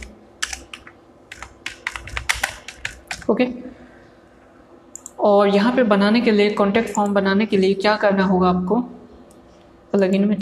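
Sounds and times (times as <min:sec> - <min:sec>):
typing on a computer keyboard: 0:00.0 - 0:03.3, 0:04.9 - 0:05.2
speech: 0:03.3 - 0:03.8, 0:05.2 - 0:09.0, 0:10.0 - 0:10.4.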